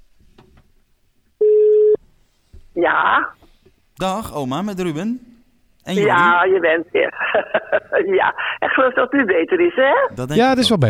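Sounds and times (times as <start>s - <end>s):
electronic telephone ringing tone while a grandmother is being called: 1.4s - 2.0s
speech: 2.8s - 3.4s, 4.0s - 10.8s
laughter: 6.0s - 9.3s.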